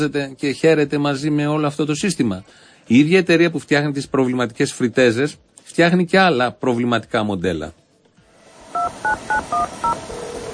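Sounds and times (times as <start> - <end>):
speech: 0.0 - 7.8
touch-tone telephone keypad beeps as a number is dialed: 8.8 - 10.0.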